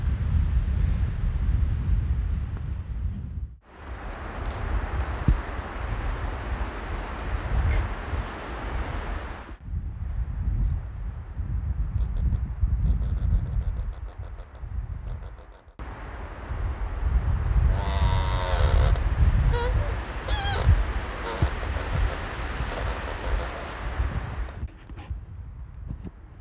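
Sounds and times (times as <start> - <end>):
wind blowing through leafless trees: 0.0 - 26.3
higher whistling or creaking tones: 12.9 - 15.8, 17.7 - 24.6.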